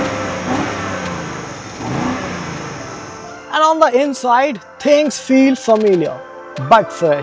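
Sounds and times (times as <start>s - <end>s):
BMW car with 21-inch wheels revving its exhaust: 0.0s - 3.3s
speech: 3.7s - 7.2s.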